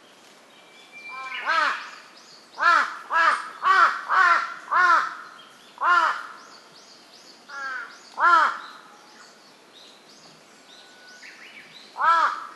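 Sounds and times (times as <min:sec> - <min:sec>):
large-billed crow cawing: 0:02.6 - 0:05.2, 0:05.8 - 0:06.4, 0:07.5 - 0:08.6, 0:12.0 - 0:12.5.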